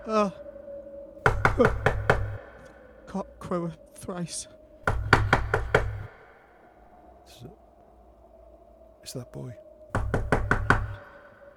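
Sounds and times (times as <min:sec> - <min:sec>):
speech: 0:00.0 - 0:00.4, 0:01.6 - 0:01.9, 0:03.1 - 0:04.6, 0:09.1 - 0:09.6
knocking on a door: 0:01.3 - 0:02.4, 0:04.9 - 0:06.1, 0:10.0 - 0:11.0.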